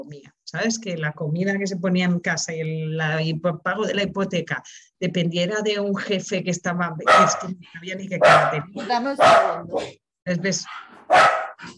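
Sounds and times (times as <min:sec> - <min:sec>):
speech: 0:00.0 - 0:11.7
dog barking and yelping: 0:07.0 - 0:07.5, 0:08.2 - 0:10.0, 0:10.6 - 0:11.7.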